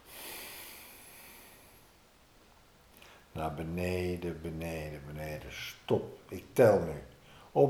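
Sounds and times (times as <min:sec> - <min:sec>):
slow exhale during a guided breathing exercise: 0:00.0 - 0:02.0, 0:07.2 - 0:07.6
speech: 0:03.4 - 0:07.6.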